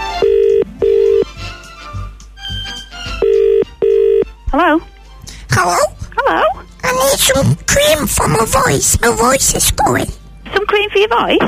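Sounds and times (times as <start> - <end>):
telephone ringing tone through the handset: 0.0 - 1.4, 3.2 - 4.3
dial-like beeps and clicks: 0.2 - 1.3, 3.2 - 4.3
speech: 4.6 - 4.9, 5.6 - 6.4, 7.2 - 11.4.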